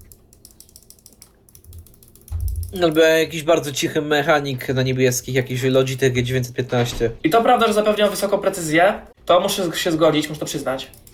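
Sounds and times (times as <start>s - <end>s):
game controller d-pad on a handheld clicking: 0.0s - 3.0s
speech: 2.7s - 11.1s.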